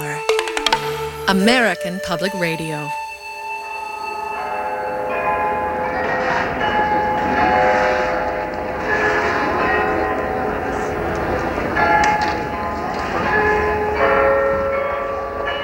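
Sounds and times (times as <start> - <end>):
43-bell Glockenspiel at the Marienplatz in Munich chiming a melody: 0.0 - 15.6
speech: 1.3 - 3.0
murmuring outdoor crowd in Munich's Marienplatz: 5.1 - 15.6.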